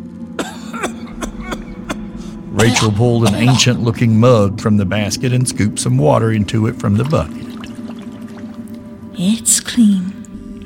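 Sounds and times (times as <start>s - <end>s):
man's phlegmy cough: 0.4s - 3.8s
speech: 2.6s - 7.5s, 9.2s - 10.6s.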